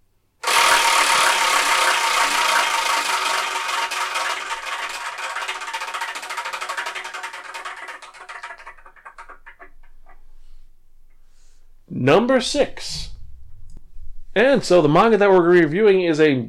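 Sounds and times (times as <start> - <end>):
prize wheel spinning with a dense clicking rattle: 0.4 - 9.7
speech: 12.0 - 13.0, 14.4 - 16.4.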